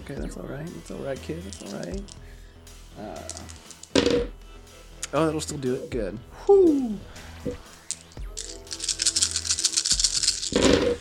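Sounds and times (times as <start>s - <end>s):
speech: 0.1s - 2.4s, 3.0s - 4.3s, 5.1s - 7.7s
dice rattling and rolling: 1.5s - 2.2s, 3.3s - 4.3s, 7.8s - 10.9s.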